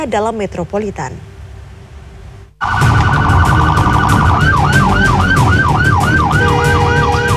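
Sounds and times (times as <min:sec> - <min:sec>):
speech: 0:00.0 - 0:01.3
low rumble of traffic: 0:00.0 - 0:07.3
ambulance siren: 0:02.6 - 0:07.3.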